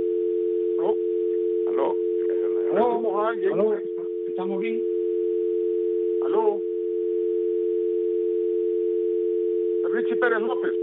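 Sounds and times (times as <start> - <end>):
telephone dial tone after a dropped call: 0.0 - 2.3, 4.0 - 9.8
speech: 3.3 - 4.9, 10.0 - 10.8.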